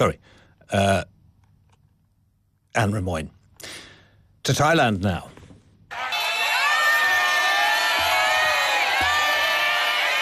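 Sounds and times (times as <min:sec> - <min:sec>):
speech: 0:00.0 - 0:01.1, 0:02.8 - 0:03.8, 0:04.4 - 0:05.3
large crowd cheering and shouting in the streets of Bangkok Thailand: 0:05.9 - 0:10.2.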